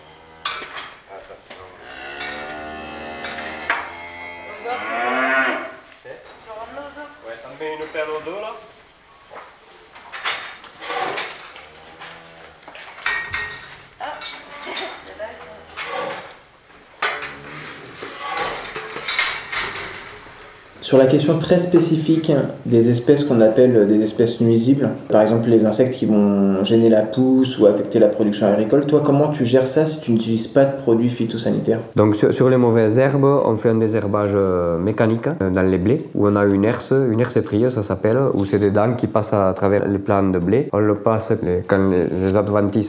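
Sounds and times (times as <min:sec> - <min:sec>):
cows mooing inside a barn at feeding time: 0:00.0 - 0:05.8, 0:11.0 - 0:12.6
rustling: 0:00.0 - 0:26.1, 0:41.7 - 0:42.8
speech: 0:20.9 - 0:42.8.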